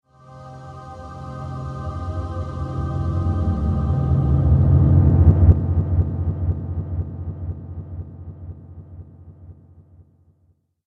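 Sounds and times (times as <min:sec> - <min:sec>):
angelic riser whoosh: 0:01.1 - 0:09.0.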